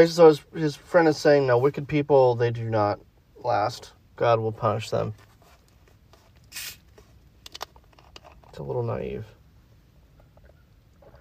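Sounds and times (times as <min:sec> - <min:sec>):
speech: 0:00.0 - 0:05.3, 0:08.6 - 0:09.4
sipping soda from a can or bottle: 0:06.4 - 0:06.8.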